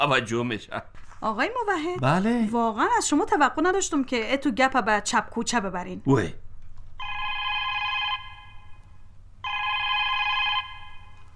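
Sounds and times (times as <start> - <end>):
speech: 0.0 - 6.4
telephone ringing: 7.0 - 8.8, 9.4 - 11.3.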